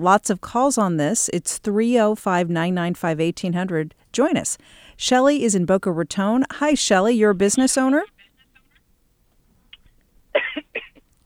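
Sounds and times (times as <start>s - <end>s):
speech: 0.0s - 8.1s
person coughing: 10.4s - 11.1s.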